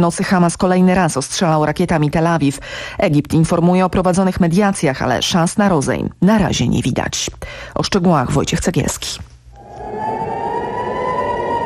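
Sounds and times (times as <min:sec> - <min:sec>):
speech: 0:00.0 - 0:09.3
air raid sirens sounding at night in Tel Aviv during rocket fire: 0:09.6 - 0:11.6.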